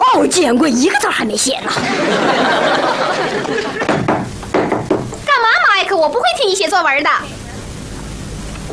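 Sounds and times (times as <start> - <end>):
speech: 0.1 - 4.4, 6.0 - 7.4
laughter: 1.8 - 4.0
knocking against a wooden door: 3.8 - 5.2.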